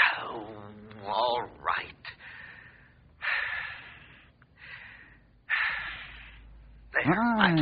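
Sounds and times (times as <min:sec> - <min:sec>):
deep breaths close to the microphone: 0:02.1 - 0:06.9
speech: 0:07.1 - 0:07.5.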